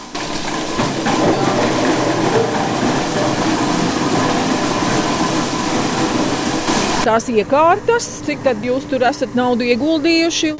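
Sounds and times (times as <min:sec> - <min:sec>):
juice press pressing quinces: 0:00.0 - 0:07.0
speech: 0:07.1 - 0:10.5.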